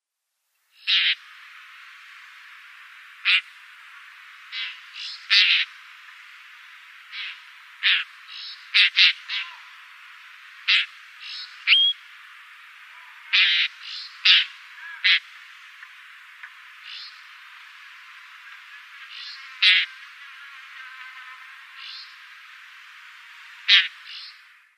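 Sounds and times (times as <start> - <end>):
Blackstart calls: 0.8 - 1.2, 3.2 - 3.6, 4.4 - 5.8, 7.0 - 9.8, 10.6 - 12.0, 12.9 - 15.3, 16.4 - 17.4, 18.4 - 22.3, 23.4 - 24.5.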